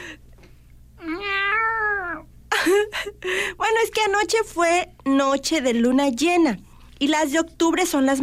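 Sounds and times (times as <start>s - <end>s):
cats meowing in the morning: 1.0s - 2.3s
speech: 3.7s - 8.2s.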